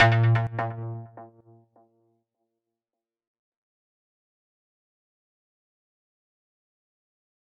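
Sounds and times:
charged synth stab: 0.0s - 1.1s.

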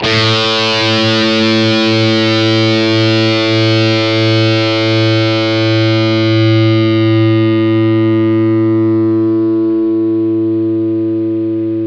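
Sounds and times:
distorted guitar playing the note A: 0.0s - 11.8s.

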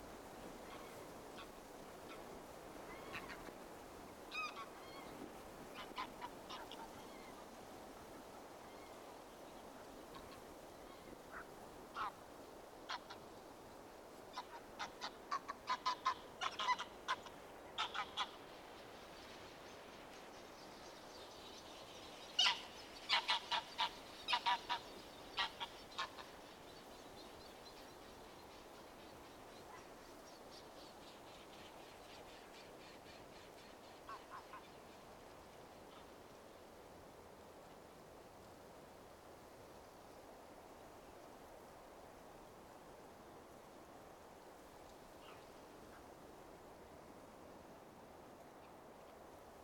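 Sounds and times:
geese flying over: 0.0s - 13.3s, 14.3s - 19.1s, 22.4s - 26.6s, 34.0s - 34.8s
soft breeze: 0.0s - 49.6s.

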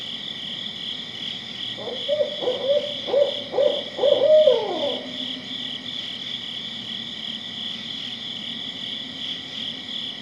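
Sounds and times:
steady high hum: 0.0s - 10.2s
barred owl hooting: 1.8s - 5.5s.

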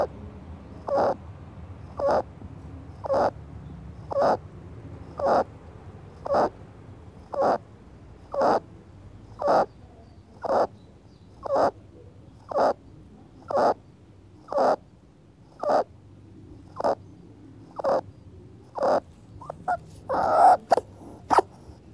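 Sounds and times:
rabbit sneezing and squeaking: 0.8s - 1.2s, 1.9s - 2.3s, 2.9s - 3.4s, 4.0s - 4.4s, 5.1s - 5.5s, 6.2s - 6.5s, 7.2s - 7.6s, 8.2s - 8.7s, 9.3s - 9.8s, 10.4s - 10.7s, 11.4s - 11.8s, 12.4s - 12.8s, 13.4s - 13.8s, 14.4s - 14.9s, 15.5s - 15.9s, 16.6s - 17.0s, 17.6s - 21.9s.

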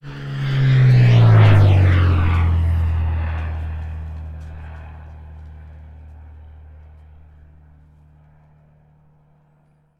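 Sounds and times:
low airplane flyover: 0.0s - 9.9s.

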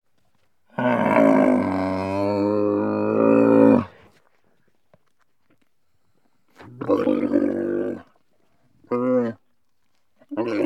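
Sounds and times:
cranky camel groaning and grunting: 0.7s - 4.0s, 6.7s - 8.2s, 8.8s - 9.4s, 10.3s - 10.6s.

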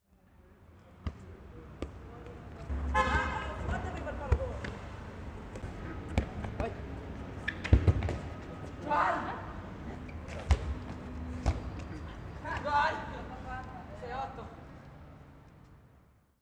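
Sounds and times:
football match sounds: 1.0s - 13.2s.

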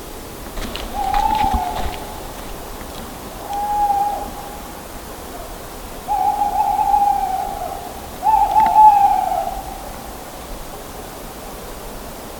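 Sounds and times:
owl hooting: 0.6s - 10.4s.

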